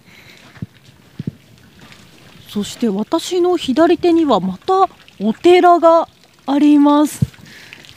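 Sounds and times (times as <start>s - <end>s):
dull thuds like footsteps: 0.0s - 5.1s
small stream trickling beside a street: 0.0s - 7.9s
speech: 2.5s - 7.2s.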